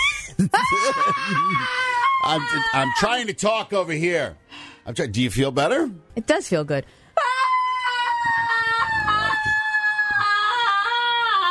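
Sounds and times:
laughter: 0.2 - 1.9
speech: 0.4 - 7.0
group of people screaming in a stress-relief session: 0.6 - 3.2, 7.2 - 11.4.

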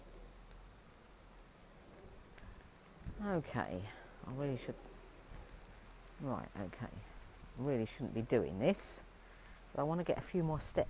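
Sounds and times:
heavy rain outdoors: 0.0 - 10.8
speech: 3.2 - 4.9, 6.2 - 9.1, 9.7 - 10.8.

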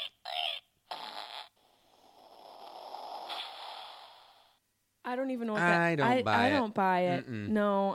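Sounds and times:
novelty meerkat fart sound effect from a book: 0.9 - 4.4
speech: 5.1 - 7.9.

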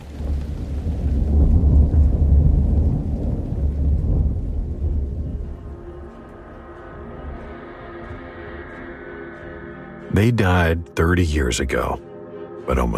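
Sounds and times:
steady hiss of rain: 0.0 - 7.6
deep sustained rumble of thunder: 0.0 - 8.4
speech: 10.2 - 12.1, 12.7 - 12.9.

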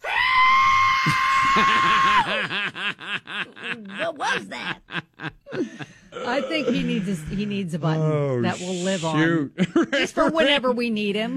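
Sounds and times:
speech: 1.0 - 2.6, 3.4 - 5.1, 6.3 - 11.3
laughter: 1.4 - 7.5, 9.6 - 10.7
voice imitating an F-35 fighter jet screech and whistle: 8.4 - 9.3.

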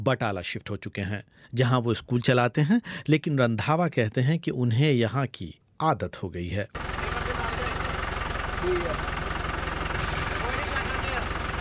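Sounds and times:
speech: 0.0 - 6.9
tractor diesel engine idling: 6.8 - 11.5.

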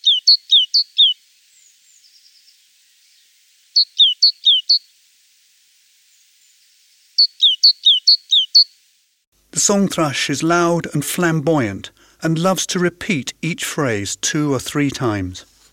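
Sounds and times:
great tit singing tea-cher phrases: 0.0 - 4.9, 7.2 - 8.7
speech: 0.8 - 1.1, 9.6 - 15.5.

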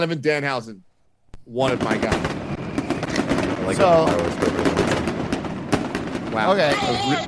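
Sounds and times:
speech: 0.0 - 0.9, 1.5 - 2.4, 3.7 - 4.9, 6.3 - 7.2
fireworks crackling pops and bangs: 1.4 - 7.2.

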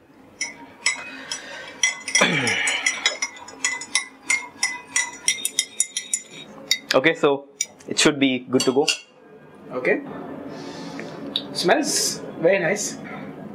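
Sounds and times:
spoon stirring sugar into black tea clinking against cup: 0.4 - 7.0
speech: 6.9 - 9.0, 9.8 - 10.4, 11.6 - 13.2.

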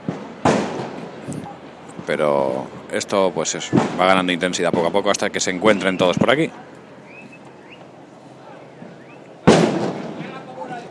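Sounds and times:
arquebus shot: 0.0 - 1.0, 3.7 - 4.0, 9.5 - 10.2
faint hum: 0.0 - 10.8
speech: 2.1 - 6.7.

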